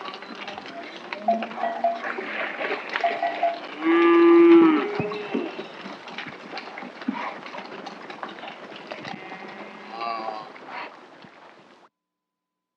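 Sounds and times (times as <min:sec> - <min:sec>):
running cattle shuffling and clattering: 0:00.0 - 0:09.8
cattle lowing: 0:00.0 - 0:11.8.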